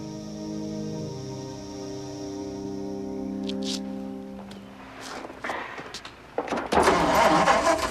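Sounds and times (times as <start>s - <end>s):
engine starting and running: 6.6s - 7.8s.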